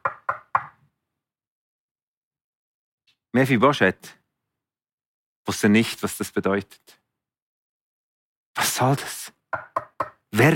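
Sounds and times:
knocking on a wooden door: 0.0 - 0.7, 9.5 - 10.2
speech: 3.3 - 4.2, 5.5 - 7.0, 8.6 - 10.5.

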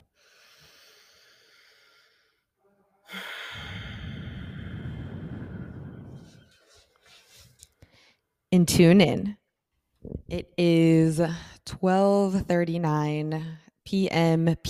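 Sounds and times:
slow deep breath in and out: 0.0 - 6.8
speech: 8.5 - 9.4, 10.3 - 14.6.

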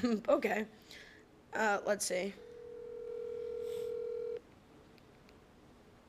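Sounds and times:
speech: 0.0 - 2.5
faint noise: 0.0 - 6.0
steady telephone dialing tone: 2.4 - 4.4.

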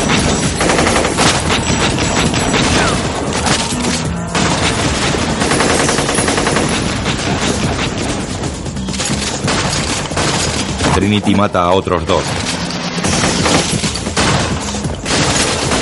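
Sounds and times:
two machine guns firing in an action scene of a science-fiction film: 0.0 - 11.2, 12.2 - 15.8
speech: 11.0 - 12.6.

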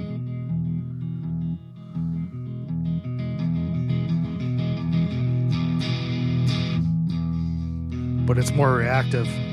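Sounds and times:
distorted electric guitar through a distortion pedal on the neck pickup playing chords: 0.0 - 9.5
speech: 8.3 - 9.5.

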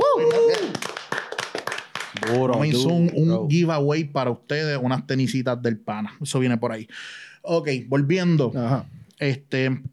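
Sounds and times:
scattered uneven hand clapping from a few people: 0.0 - 2.9
speech: 2.3 - 9.9.

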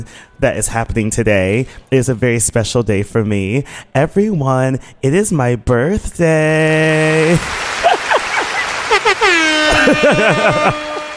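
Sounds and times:
speech: 0.0 - 7.7, 9.2 - 10.9
laughter: 7.3 - 11.1
foghorn blast from the audience at the Line Hotel in Washington, D.C.: 9.0 - 11.1.

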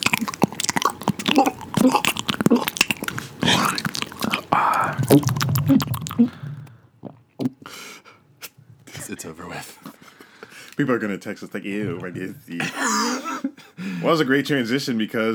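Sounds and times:
person chewing and crunching food while eating: 0.0 - 7.6
speech: 1.8 - 2.1, 10.8 - 15.3.

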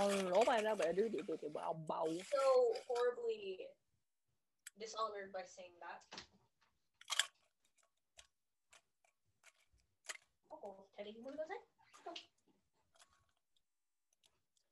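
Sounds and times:
ice being crushed with sharp cracks and crunches: 0.0 - 3.0, 7.0 - 10.4
speech: 0.1 - 3.8, 4.8 - 6.4, 10.5 - 12.3.

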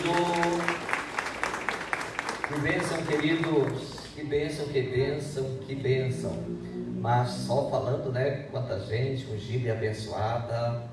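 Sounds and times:
crowd applauding: 0.0 - 4.2
speech: 2.5 - 10.9
sustained tone: 5.4 - 8.9.

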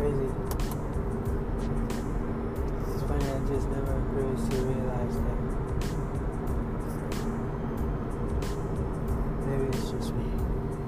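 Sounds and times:
airy whooshes of passing traffic: 0.0 - 10.8
car engine drone while driving: 0.0 - 10.8
road rumble and hum while driving: 0.0 - 10.8.

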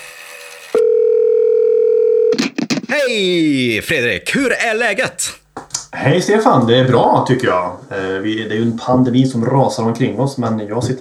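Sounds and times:
telephone ringing tone of an outgoing call: 0.6 - 2.4
speech: 3.0 - 10.9.

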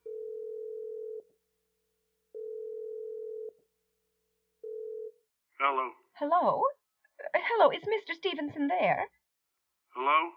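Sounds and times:
telephone ringing tone while calling a number: 0.0 - 1.2, 2.4 - 3.6, 4.6 - 5.2
speech: 5.6 - 6.8, 7.5 - 9.2, 10.0 - 10.3.

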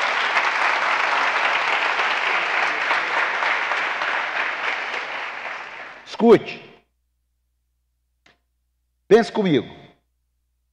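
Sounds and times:
sustained applause from a sizable audience: 0.0 - 6.1
speech: 6.2 - 6.7, 9.1 - 9.8.

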